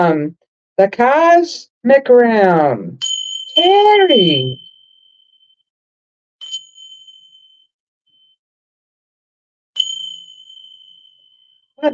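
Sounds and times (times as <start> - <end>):
speech: 0.0 - 4.7
small hand bells struck: 3.0 - 5.2, 6.4 - 7.6, 9.8 - 11.9.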